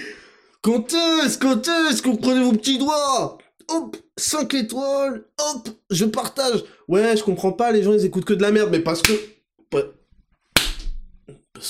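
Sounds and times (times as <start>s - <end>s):
speech: 0.6s - 10.0s, 11.3s - 11.6s
slap on the back of the neck: 9.0s - 9.3s, 10.6s - 11.0s.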